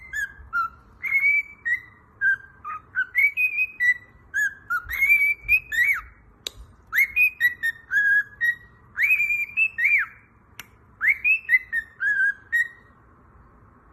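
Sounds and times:
cockatiel whistling tuneful phrases: 0:00.0 - 0:13.0
cockatiel clicks: 0:06.4 - 0:06.7, 0:10.5 - 0:10.8.

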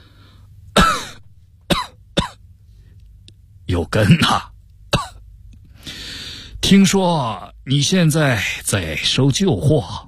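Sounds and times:
man coughing violently with harsh rasping coughs: 0:00.8 - 0:02.4, 0:04.0 - 0:05.2
speech: 0:03.8 - 0:04.5, 0:06.7 - 0:10.0.

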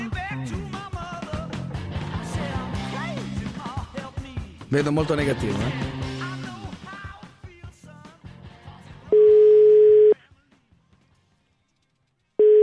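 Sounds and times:
speech: 0:04.7 - 0:06.1
telephone busy tone after a caller hangs up: 0:09.1 - 0:10.2, 0:12.4 - 0:12.6.

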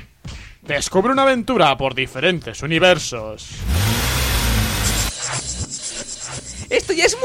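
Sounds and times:
speech: 0:00.7 - 0:04.0, 0:06.9 - 0:07.2
video game car engine revving: 0:03.6 - 0:05.1.

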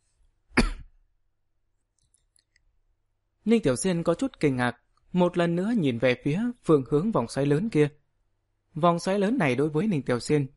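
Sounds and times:
adult cough: 0:00.5 - 0:01.0
speech: 0:03.4 - 0:08.0, 0:08.7 - 0:10.5.

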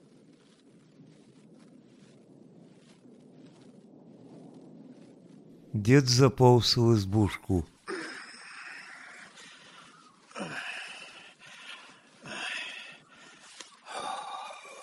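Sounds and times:
speech: 0:05.8 - 0:07.7
old man breathing onto his hands to warm them: 0:09.4 - 0:14.8.

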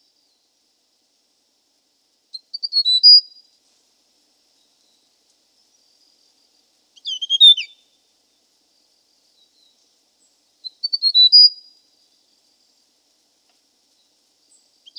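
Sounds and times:
hill prinia giving stuttering chirp-and-whistle phrases: 0:02.4 - 0:03.4, 0:07.0 - 0:07.8, 0:10.6 - 0:11.8.

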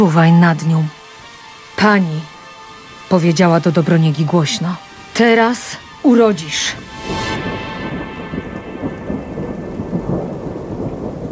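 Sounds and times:
speech: 0:00.0 - 0:01.0, 0:01.8 - 0:02.3, 0:03.1 - 0:07.2
rain falling: 0:00.0 - 0:11.3
distant thunder rumbling in a storm: 0:03.1 - 0:11.3.

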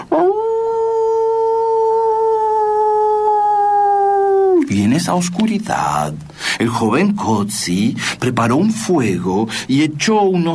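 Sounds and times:
dog howling: 0:00.0 - 0:04.7
speech: 0:04.7 - 0:10.5.

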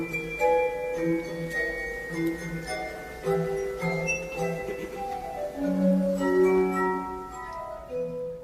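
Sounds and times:
glass harmonica melody: 0:00.0 - 0:08.4.

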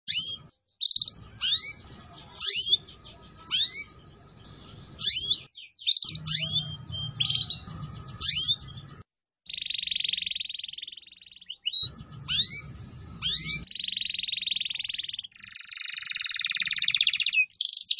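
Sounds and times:
Atlantic canary singing: 0:00.1 - 0:17.9.

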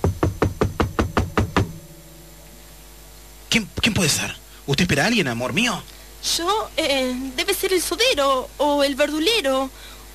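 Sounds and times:
knocking on a door: 0:00.0 - 0:01.8
speech: 0:03.6 - 0:09.9.

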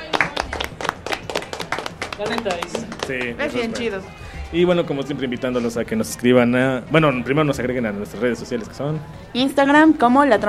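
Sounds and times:
small group of people clapping in applause: 0:00.0 - 0:04.0
speech: 0:02.2 - 0:10.4.

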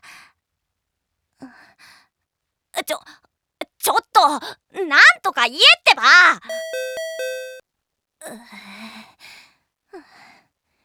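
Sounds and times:
speech: 0:04.2 - 0:06.6
two-tone ding-dong doorbell chime: 0:06.5 - 0:07.6.

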